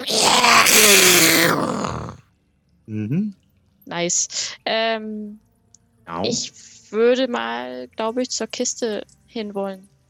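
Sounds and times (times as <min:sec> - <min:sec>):
voice imitating a creature's rasping wailing scream: 0:00.0 - 0:02.2
speech: 0:02.9 - 0:05.5, 0:06.1 - 0:09.9.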